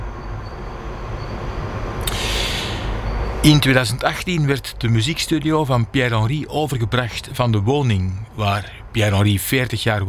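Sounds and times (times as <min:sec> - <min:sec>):
Paris Metro line 5 train rumbling with heavy low roar: 0:00.0 - 0:10.0
sharp hiss of air from Paris Metro line 5 train: 0:01.9 - 0:03.4
speech: 0:03.4 - 0:10.0.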